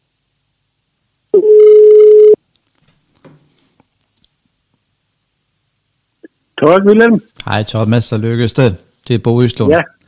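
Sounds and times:
telephone line ringback tone: 1.4 - 2.4
speech: 6.6 - 10.0.

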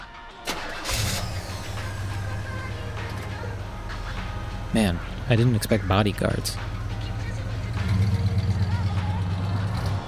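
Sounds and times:
car engine starting and idling: 0.4 - 10.0
speech: 4.7 - 6.8.

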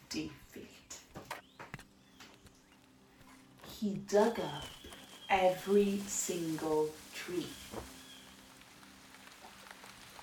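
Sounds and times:
speech: 0.1 - 0.4, 3.8 - 7.9
raindrops pattering on a surface: 1.1 - 10.2
steady rain falling: 3.6 - 10.2.

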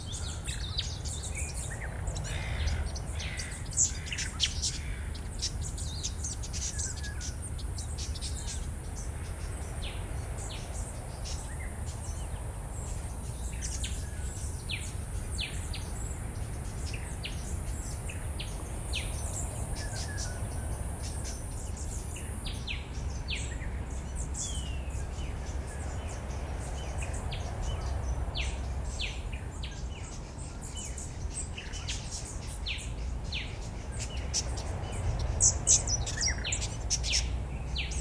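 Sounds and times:
birds calling and chirping in bushland: 0.0 - 37.9.

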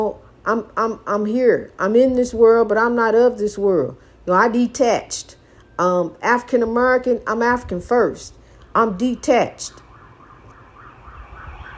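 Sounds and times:
speech: 0.0 - 9.8
low rumbling traffic: 0.0 - 11.7
siren wailing: 9.6 - 11.7.

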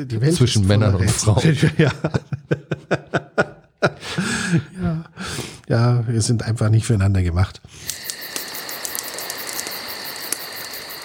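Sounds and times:
speech: 0.0 - 3.1, 4.5 - 4.8, 5.7 - 7.9
laughter: 1.3 - 5.1
campfire crackling with pops and snaps: 7.7 - 11.0.

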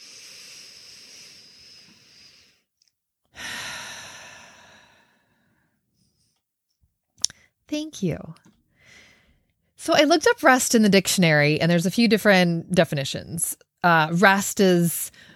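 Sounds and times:
deep breath in through the nose, out through the mouth: 0.0 - 2.7, 3.4 - 6.4, 8.7 - 9.5
speech: 7.7 - 8.6, 9.8 - 15.3.

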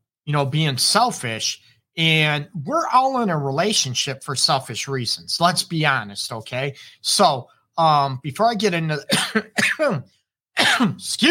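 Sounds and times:
speech: 0.3 - 11.2
person clearing throat from allergies: 9.1 - 10.0, 10.6 - 11.0
person coughing from allergies: 9.1 - 11.1.

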